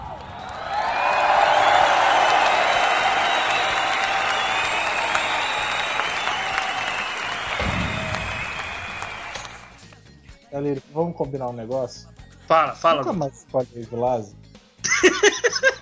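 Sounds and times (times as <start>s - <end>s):
applause from a group of people: 0.0s - 10.0s
speech: 10.7s - 14.4s, 15.0s - 15.8s
laughter: 14.8s - 15.8s.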